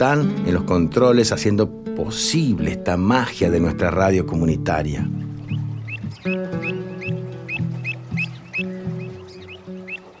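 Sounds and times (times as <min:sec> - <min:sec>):
speech: 0:00.0 - 0:05.2
birds chirping in an old carob tree: 0:02.8 - 0:10.1.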